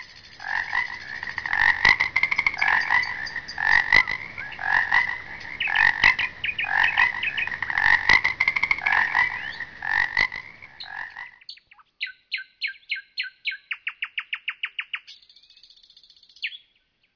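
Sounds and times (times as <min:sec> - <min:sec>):
nightingale calling sharp notes: 0:00.0 - 0:11.2
frogs croaking in a dense chorus: 0:00.0 - 0:16.6.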